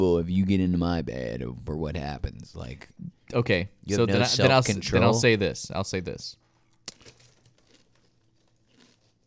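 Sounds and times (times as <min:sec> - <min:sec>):
speech: 0:00.0 - 0:06.4
someone chewing crisp spicy chips: 0:06.7 - 0:09.2.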